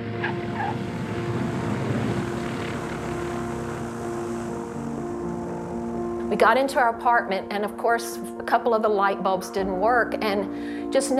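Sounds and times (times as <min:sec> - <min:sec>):
propeller airplane engine droning: 0:00.0 - 0:07.4
speech: 0:06.3 - 0:11.1.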